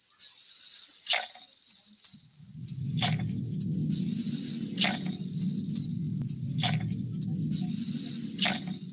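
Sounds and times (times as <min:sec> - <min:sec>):
imitated rainfall hiss: 0:00.0 - 0:08.9
low rushing rumble: 0:02.2 - 0:08.9.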